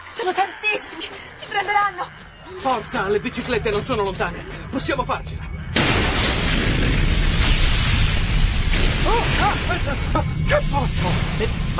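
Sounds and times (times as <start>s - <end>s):
speech: 0.2s - 5.5s, 9.0s - 11.7s
laboratory explosion with flames igniting gas, roaring rumble: 5.6s - 11.7s.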